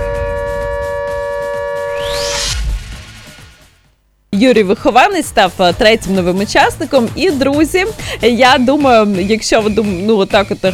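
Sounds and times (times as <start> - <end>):
air raid siren: 0.0 - 3.8
speech: 4.4 - 10.7.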